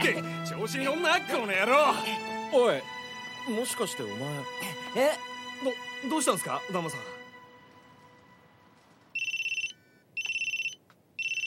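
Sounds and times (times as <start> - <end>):
speech: 0.2 - 7.2
teacher's mobile phone ringing with trilling electronic tones: 9.1 - 11.4.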